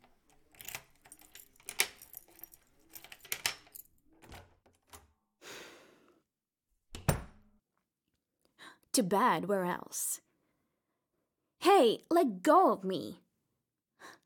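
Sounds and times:
keys jangling and clinking: 0:00.0 - 0:04.6
speech: 0:09.0 - 0:10.2, 0:11.7 - 0:13.2.

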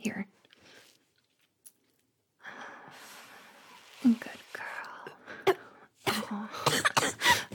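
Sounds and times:
harsh coughing after inhaling cigarette smoke: 0:06.1 - 0:07.5.

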